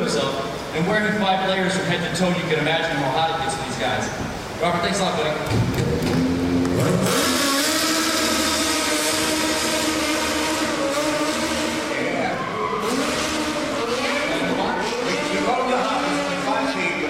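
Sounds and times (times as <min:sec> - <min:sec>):
speech: 0:00.0 - 0:06.2
stunt car engine revving: 0:05.6 - 0:17.0.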